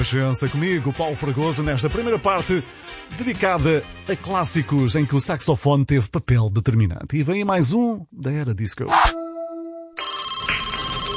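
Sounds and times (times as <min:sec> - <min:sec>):
speech: 0:00.0 - 0:09.2
telephone ringing in a steady electronic tone: 0:10.0 - 0:11.1.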